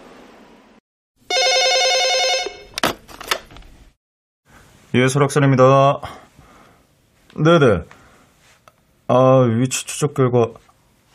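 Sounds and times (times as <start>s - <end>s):
telephone ringing: 1.3s - 2.8s
speech: 4.9s - 6.2s, 7.4s - 8.0s, 9.1s - 10.7s.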